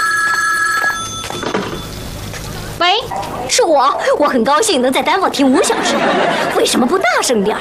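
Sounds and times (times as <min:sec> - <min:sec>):
telephone bell ringing: 0:00.0 - 0:02.0
speech: 0:03.6 - 0:07.5
laughter: 0:05.4 - 0:07.5.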